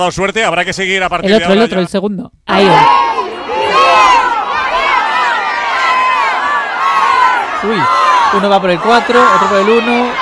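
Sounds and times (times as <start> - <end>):
speech: 0.0 - 3.2, 7.6 - 10.2
dense crowd shouting and cheering outdoors: 2.5 - 10.2.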